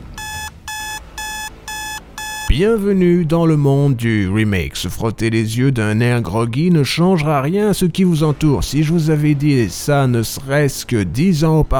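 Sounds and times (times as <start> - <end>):
electronic alarm clock beeping: 0.0 - 2.6
speech: 2.5 - 11.7.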